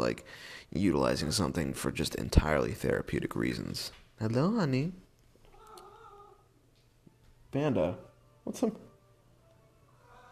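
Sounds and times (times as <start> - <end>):
speech: 0.1 - 5.0, 7.5 - 8.9
cat meowing, agitated: 5.5 - 6.5, 10.0 - 10.3.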